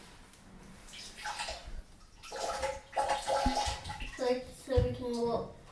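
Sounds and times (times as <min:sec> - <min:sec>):
water pouring and splashing over a child in a bathtub: 0:00.9 - 0:05.3.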